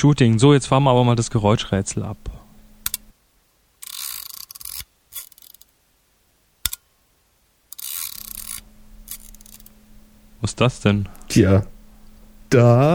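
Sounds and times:
speech: 0:00.0 - 0:02.4, 0:10.4 - 0:11.8, 0:12.5 - 0:12.9
camera mechanism whirring: 0:02.6 - 0:03.1, 0:03.8 - 0:05.7, 0:07.7 - 0:10.4
camera mechanism clicking: 0:02.8 - 0:03.0, 0:03.8 - 0:05.7, 0:07.7 - 0:09.8.

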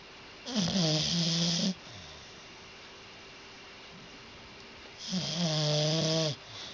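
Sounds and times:
faint steady hiss: 0:00.0 - 0:06.7
dog snoring deeply and slowly: 0:00.4 - 0:02.2, 0:05.0 - 0:06.7.

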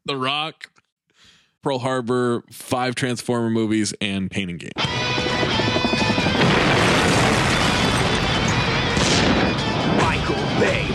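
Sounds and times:
speech: 0:00.1 - 0:06.9, 0:10.3 - 0:10.9
movie explosion sound effect: 0:05.2 - 0:10.9
crashing debris: 0:06.1 - 0:10.0.

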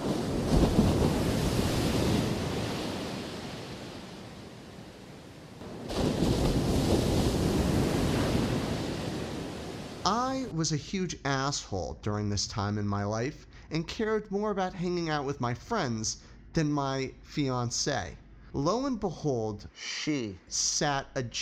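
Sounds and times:
large ocean waves crashing against shoreline: 0:00.0 - 0:10.5
speech: 0:10.1 - 0:21.4.

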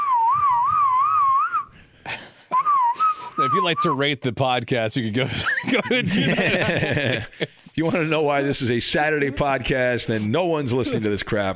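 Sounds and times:
two men whistling a tune: 0:00.0 - 0:01.8, 0:02.5 - 0:04.0
speech: 0:03.4 - 0:11.5
laughter: 0:05.2 - 0:08.5.

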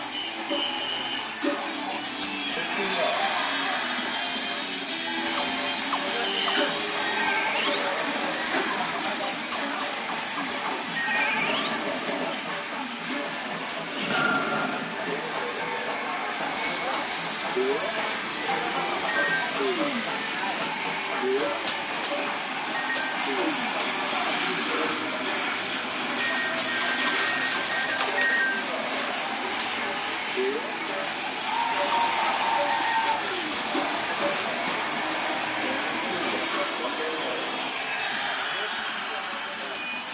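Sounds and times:
electronic video arcade game sounds at a train station: 0:00.0 - 0:40.1
murmur of crowd voices at a train station: 0:00.0 - 0:40.1.

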